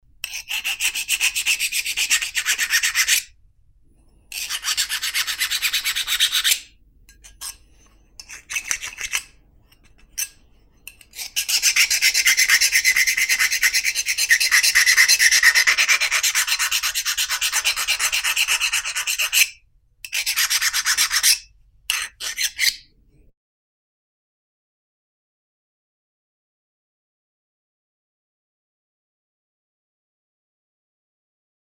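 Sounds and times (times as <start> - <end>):
file scraping: 0.2 - 3.3, 4.3 - 22.9.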